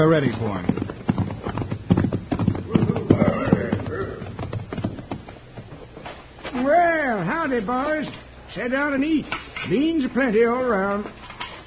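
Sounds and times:
speech: 0:00.0 - 0:00.8, 0:07.5 - 0:11.2
several horses' hooves clip-clopping at a walking pace: 0:00.0 - 0:08.3.

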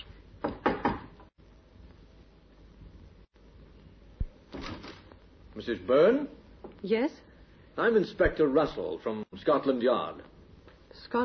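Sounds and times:
low steady hiss: 0:00.0 - 0:11.2
knocks on the wooden door of a small flat: 0:00.4 - 0:01.3
speech: 0:05.6 - 0:07.2, 0:07.8 - 0:10.3, 0:11.0 - 0:11.2.

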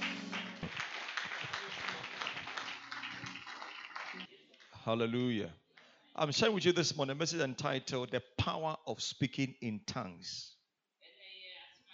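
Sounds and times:
crowd clapping: 0:00.0 - 0:05.9
speech: 0:04.9 - 0:05.6, 0:06.2 - 0:10.6.

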